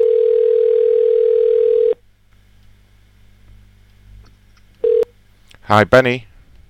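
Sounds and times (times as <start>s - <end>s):
telephone ringing tone while transferring a call: 0.0s - 2.0s, 4.8s - 5.1s
speech: 5.7s - 6.3s.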